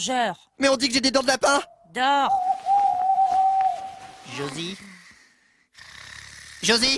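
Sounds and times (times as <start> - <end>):
speech: 0.0 - 2.4, 4.3 - 4.9, 6.6 - 6.9
owl hooting: 1.7 - 4.4.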